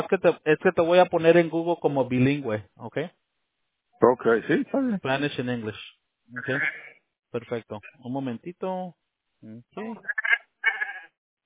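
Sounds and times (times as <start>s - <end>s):
speech: 0.0s - 3.2s, 4.0s - 10.3s
goats bleating: 6.4s - 7.0s.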